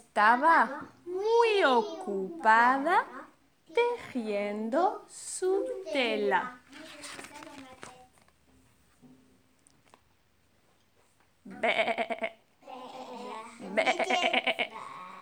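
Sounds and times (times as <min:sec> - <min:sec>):
speech: 0:00.2 - 0:07.3, 0:11.5 - 0:12.3
goat bleating: 0:11.5 - 0:12.4, 0:13.6 - 0:15.0.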